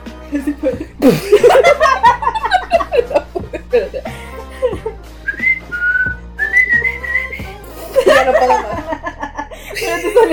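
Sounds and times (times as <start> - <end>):
speech: 0.3 - 2.1
laughter: 0.4 - 5.0, 7.7 - 10.3
person whistling a short lilting tune: 5.2 - 7.6.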